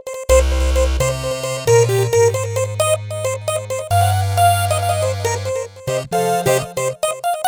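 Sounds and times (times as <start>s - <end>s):
Roland JV-880 synthesizer touch lead factory patch: 0.3s - 7.3s.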